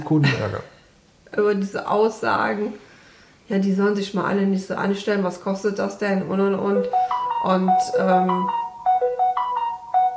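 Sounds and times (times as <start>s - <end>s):
speech: 0.0s - 2.9s, 3.5s - 8.6s
mobile phone ringing with a bright electronic tune: 6.7s - 10.1s.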